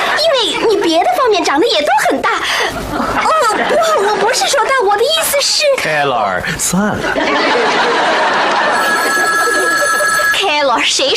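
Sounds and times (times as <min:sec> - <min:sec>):
dense broad noise: 0:00.0 - 0:11.1
laughter: 0:02.3 - 0:04.9, 0:06.8 - 0:10.4
speech: 0:05.4 - 0:09.6, 0:10.6 - 0:11.1
telephone ringing for an incoming call: 0:08.2 - 0:10.9.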